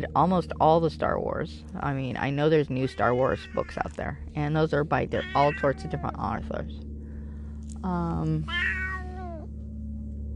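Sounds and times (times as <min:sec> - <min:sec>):
speech: 0:00.0 - 0:06.9, 0:07.8 - 0:08.8
steady hum: 0:00.0 - 0:10.3
cat meowing: 0:05.2 - 0:06.0, 0:08.5 - 0:09.5.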